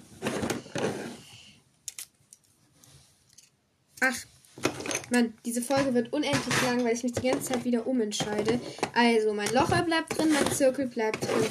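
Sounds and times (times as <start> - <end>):
several pairs of scissors rustling and scraping: 1.9 - 3.5, 4.5 - 11.4
speech: 4.0 - 11.4.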